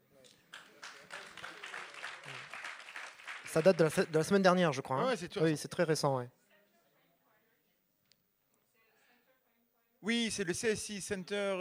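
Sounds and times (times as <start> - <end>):
audience applause: 0.5 - 4.4
speech: 3.6 - 6.4, 10.1 - 11.5.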